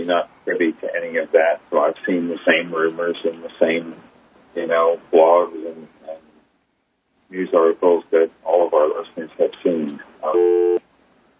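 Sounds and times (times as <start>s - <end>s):
speech: 0.0s - 5.9s, 7.3s - 10.8s
telephone busy signal after caller hung up: 10.4s - 10.8s.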